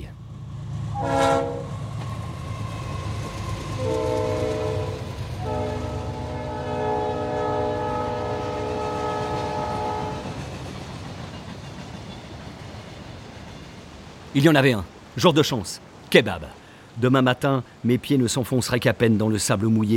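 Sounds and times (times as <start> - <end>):
train horn near a French station: 0.9 - 1.8, 3.7 - 10.4
speech: 14.4 - 19.9.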